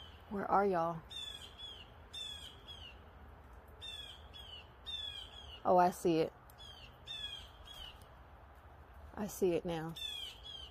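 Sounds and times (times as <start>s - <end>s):
speech: 0.3s - 1.1s, 5.6s - 6.4s, 9.2s - 10.1s
birds squawking outdoors: 1.1s - 3.0s, 3.8s - 5.6s, 6.6s - 8.0s, 10.0s - 10.6s.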